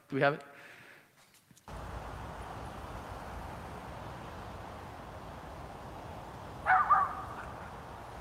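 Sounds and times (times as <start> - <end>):
small rat terrier barking at a beaver: 6.6 - 7.8.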